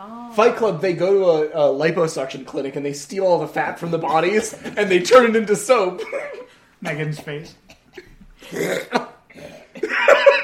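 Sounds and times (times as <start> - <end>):
speech: 0.0 - 7.7, 8.4 - 9.0
laughter: 3.8 - 10.4
person coughing: 6.0 - 10.4
person retching: 7.7 - 9.8.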